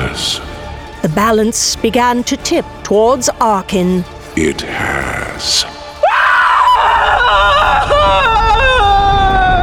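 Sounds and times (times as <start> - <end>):
speech: 0.1 - 5.8
woman screaming: 6.0 - 9.6.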